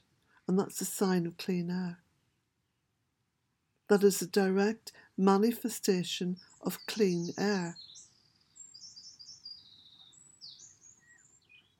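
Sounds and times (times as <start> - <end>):
speech: 0.5 - 2.0, 3.9 - 7.9
high-pitched birdsong trills and chirps outdoors: 6.3 - 11.7.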